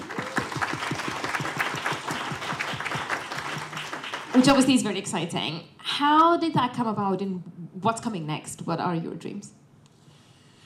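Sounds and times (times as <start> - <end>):
small group clapping: 0.0 - 4.9
speech: 4.4 - 9.6.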